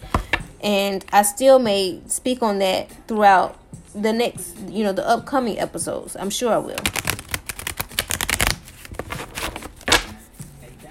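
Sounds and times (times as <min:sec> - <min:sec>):
speech: 0:00.6 - 0:07.0
oracle cards being shuffled and drawn from a deck: 0:06.8 - 0:10.2.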